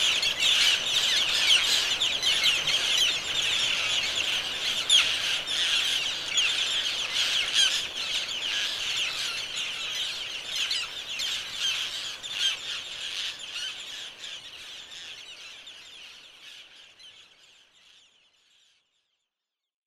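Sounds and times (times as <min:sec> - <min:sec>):
roseate terns calling in chorus: 0:00.0 - 0:18.2.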